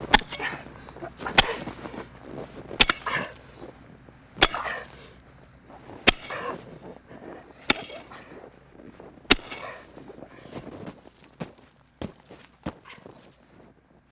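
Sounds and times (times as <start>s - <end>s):
shovel digging snow with effort: 0.0s - 3.8s, 4.4s - 11.5s.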